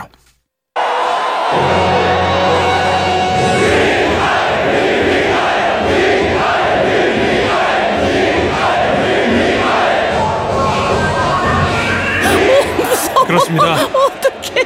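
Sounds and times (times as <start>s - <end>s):
huge crowd of soldiers roaring and cheering at a military morale concert: 0.8s - 14.6s
laughter: 12.2s - 14.6s.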